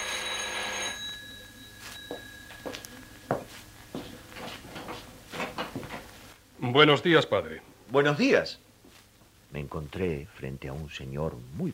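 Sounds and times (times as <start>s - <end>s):
bright ringing bell: 0.0s - 3.6s
speech: 6.6s - 8.6s, 9.5s - 11.7s.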